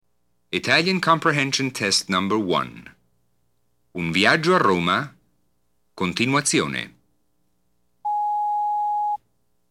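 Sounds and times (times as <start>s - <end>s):
speech: 0.5s - 3.0s, 4.0s - 5.2s, 6.0s - 7.0s
telephone ringing with an electronic beep: 8.1s - 9.2s.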